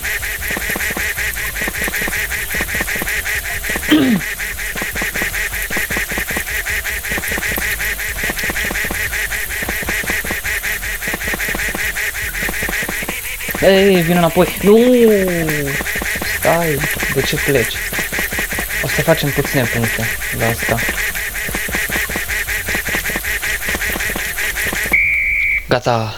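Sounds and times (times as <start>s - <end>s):
duck quacking in a video game: 0.0s - 24.9s
speech: 13.6s - 17.9s, 19.0s - 21.1s, 25.7s - 26.1s.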